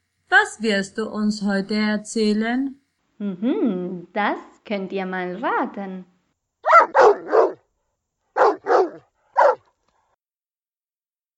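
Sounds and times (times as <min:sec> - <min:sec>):
speech: 0:00.6 - 0:06.1
dog barking: 0:06.6 - 0:07.7, 0:08.3 - 0:09.7.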